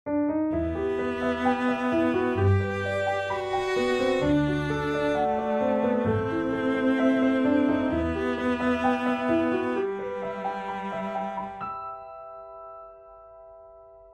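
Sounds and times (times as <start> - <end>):
piano: 0.0 - 14.1
strings: 0.5 - 12.0
cello: 0.5 - 12.4.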